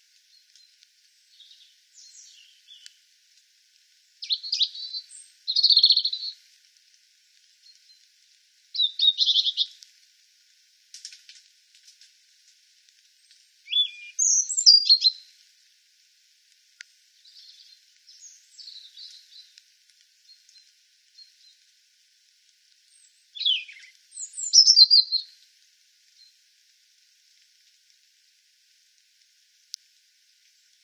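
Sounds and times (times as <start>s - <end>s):
European robin Erithacus rubecula singing high tinkling phrases: 1.3s - 3.0s, 4.2s - 6.4s, 8.8s - 9.8s, 13.7s - 15.3s, 17.2s - 19.6s, 22.9s - 25.4s.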